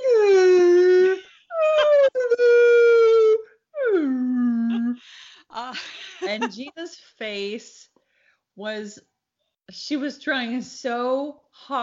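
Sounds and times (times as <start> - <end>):
human voice imitating humpback whale song with moaning calls: 0.0 - 5.0
speech: 6.4 - 7.9, 8.6 - 9.1, 9.7 - 11.8.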